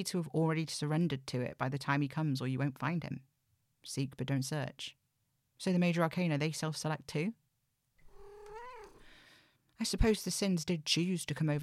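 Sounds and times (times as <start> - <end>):
speech: 0.0 - 5.0, 5.6 - 7.4, 9.8 - 11.6
cat meowing: 8.1 - 9.1.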